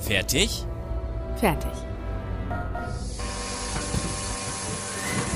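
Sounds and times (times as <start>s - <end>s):
speech: 0.1s - 0.7s, 1.4s - 1.9s
airlock door hissing open with rushing air: 2.9s - 5.3s.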